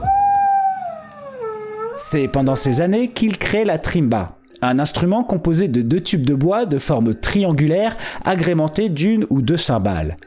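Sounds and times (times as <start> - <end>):
dog howling: 0.0 - 3.1
speech: 2.1 - 10.2.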